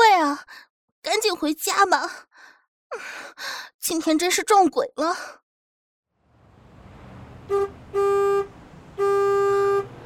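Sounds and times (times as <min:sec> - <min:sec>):
speech: 0:00.4 - 0:05.4, 0:07.5 - 0:09.2
low bus engine rumble: 0:06.2 - 0:10.0
bus horn honking: 0:07.2 - 0:10.0.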